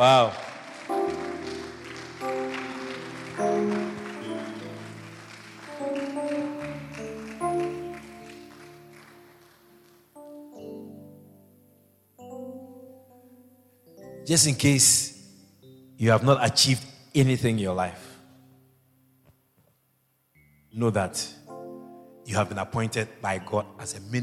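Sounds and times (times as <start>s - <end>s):
speech: 0.0s - 0.4s, 14.3s - 15.1s, 16.0s - 18.0s, 20.8s - 21.4s, 22.3s - 24.2s
standing church audience clapping along: 0.0s - 10.4s
loud sustained keyboard chords: 0.0s - 16.6s, 20.4s - 24.2s.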